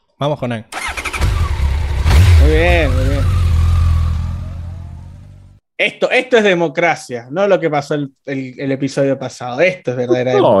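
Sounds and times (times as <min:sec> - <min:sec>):
speech: 0:00.2 - 0:00.8, 0:02.4 - 0:03.4, 0:05.8 - 0:10.5
motorcycle engine revving as a sound effect: 0:00.8 - 0:05.6.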